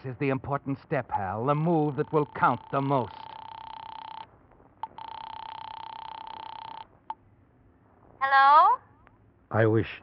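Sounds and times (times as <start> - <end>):
speech: 0.0 - 3.3, 9.5 - 10.0
long steady buzzing telephone tones in a drugstore phone booth: 1.4 - 7.2.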